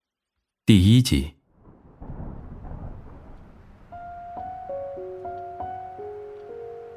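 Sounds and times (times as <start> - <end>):
speech: 0.7 - 1.4
thunder rumbling: 1.5 - 5.9
heavy rain: 1.6 - 6.9.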